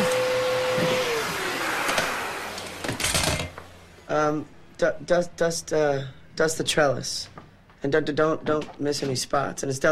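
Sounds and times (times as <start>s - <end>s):
vacuum cleaner running with a hissing whine: 0.0s - 4.3s
speech: 4.2s - 9.9s.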